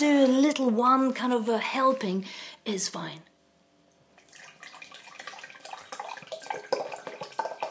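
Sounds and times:
speech: 0.7s - 3.3s
water pouring into a measuring jug: 4.2s - 7.7s.

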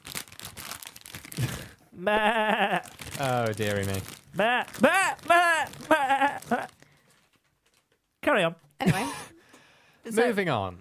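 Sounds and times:
rustling crinkling noise: 0.0s - 1.6s, 2.8s - 8.2s
human voice imitating sheep bleating: 2.0s - 2.9s, 4.4s - 6.7s
speech: 2.0s - 6.7s, 8.3s - 9.2s, 10.1s - 10.7s.

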